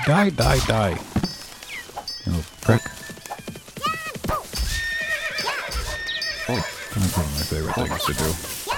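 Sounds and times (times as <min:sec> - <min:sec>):
speech: 0:00.1 - 0:01.1, 0:02.3 - 0:02.9, 0:06.5 - 0:08.6
horse whinnying shrilly: 0:04.7 - 0:07.3.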